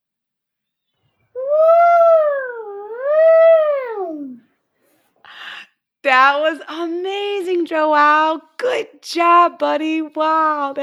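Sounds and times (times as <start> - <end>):
child imitating an elephant trumpeting: 1.4 - 4.4
speech: 6.1 - 10.8.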